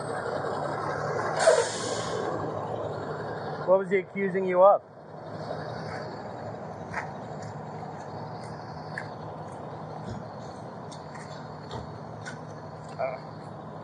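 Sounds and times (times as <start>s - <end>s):
heavy truck engine rumbling: 0.0s - 13.8s
truck air brakes hissing: 1.4s - 2.3s
speech: 3.7s - 4.9s.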